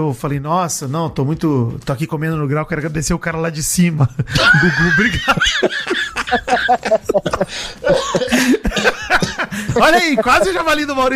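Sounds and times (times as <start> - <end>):
speech: 0.0 - 11.1
person coughing while laughing: 5.8 - 10.5.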